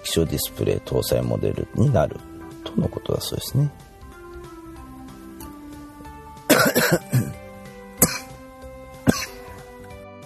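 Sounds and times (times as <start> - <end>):
speech: 0.2 - 3.9
person coughing harshly: 6.5 - 8.4, 9.0 - 9.6.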